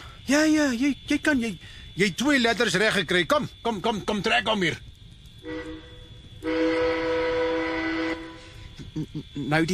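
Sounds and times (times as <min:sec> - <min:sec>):
speech: 0:00.3 - 0:06.7, 0:09.0 - 0:09.7
train locomotive whistle blasts: 0:05.4 - 0:08.5.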